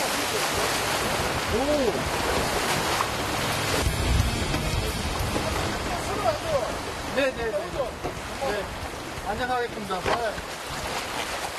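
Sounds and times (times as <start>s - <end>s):
rough surf crashing around a small boat during seaweed harvesting: 0.0s - 11.5s
gusty wind roaring across the microphone: 0.4s - 9.4s
speech: 7.2s - 10.6s.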